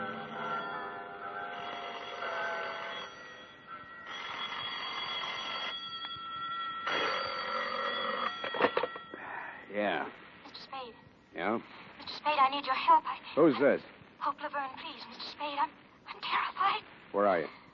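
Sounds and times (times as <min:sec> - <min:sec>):
telephone bell ringing: 0:00.0 - 0:09.3
speech: 0:09.8 - 0:10.2, 0:10.8 - 0:17.6.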